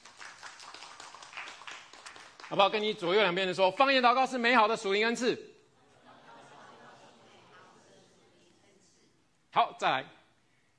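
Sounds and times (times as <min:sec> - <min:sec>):
audience clapping: 0:00.0 - 0:03.3
speech: 0:02.5 - 0:05.5, 0:09.8 - 0:10.2
laughter: 0:05.8 - 0:08.5.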